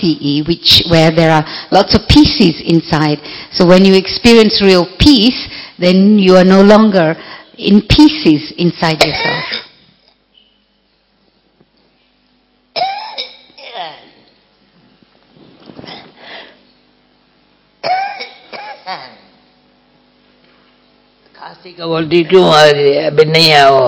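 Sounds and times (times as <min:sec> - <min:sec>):
speech: 0:00.0 - 0:09.6, 0:21.7 - 0:23.8
coughing and throat clearing: 0:09.1 - 0:09.8, 0:12.8 - 0:14.2, 0:17.8 - 0:19.3.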